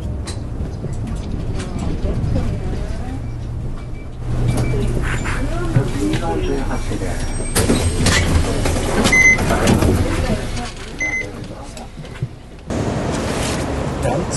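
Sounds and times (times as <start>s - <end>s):
bus engine rumbling as bus pulls away from a bus stop in a Japanese housing estate: 0.0s - 14.3s
short electronic beeps: 9.1s - 9.5s, 11.0s - 11.3s.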